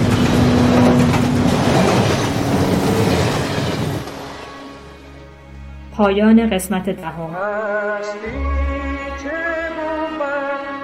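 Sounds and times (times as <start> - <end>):
train rumbling along the tracks leaving the city: 0.0 - 5.3
speech: 6.0 - 10.0.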